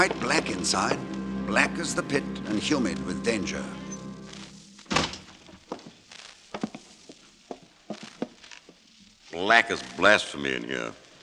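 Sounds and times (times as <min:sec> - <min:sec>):
speech: 0:00.0 - 0:03.8, 0:09.4 - 0:11.0
heavy wooden door opening: 0:04.8 - 0:05.6.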